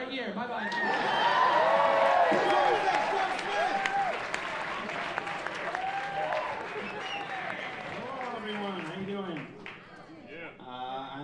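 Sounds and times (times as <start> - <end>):
speech: 0.1 - 1.2
crowd whooping and cheering: 0.6 - 9.0
audience applause: 0.6 - 10.1
laughter: 0.7 - 10.1.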